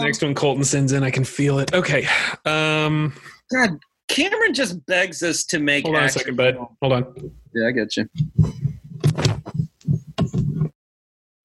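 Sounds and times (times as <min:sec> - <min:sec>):
speech: 0:00.1 - 0:09.2
headphones being knocked out and fumbled with: 0:08.1 - 0:10.8.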